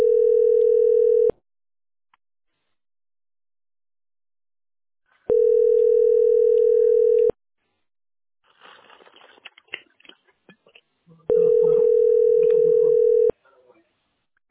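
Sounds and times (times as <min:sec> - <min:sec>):
telephone ringback tone: 0:00.0 - 0:01.3, 0:05.3 - 0:07.3, 0:11.3 - 0:13.3.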